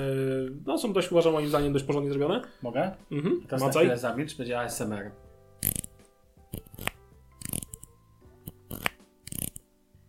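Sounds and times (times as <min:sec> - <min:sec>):
speech: 0:00.0 - 0:05.7
headphone headband being extended, ratcheting clicks: 0:05.6 - 0:09.6.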